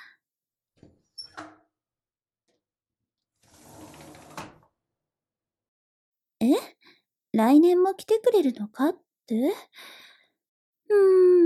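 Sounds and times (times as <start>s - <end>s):
window being opened in a cold room: 3.4s - 4.7s
speech: 6.4s - 6.8s, 7.4s - 10.1s, 10.9s - 11.4s.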